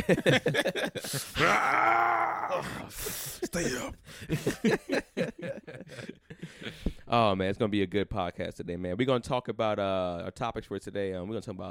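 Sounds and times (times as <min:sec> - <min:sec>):
laughter: 0:00.0 - 0:01.8, 0:02.9 - 0:06.8
speech: 0:00.1 - 0:11.6
person making a stifled yawn and groaning moan: 0:01.2 - 0:04.0.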